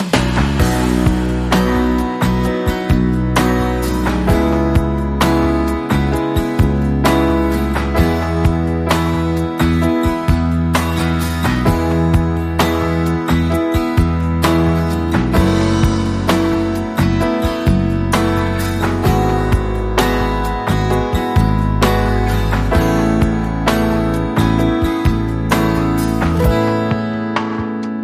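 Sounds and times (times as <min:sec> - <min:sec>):
short wobble bass rhythm: 0:00.2 - 0:27.9.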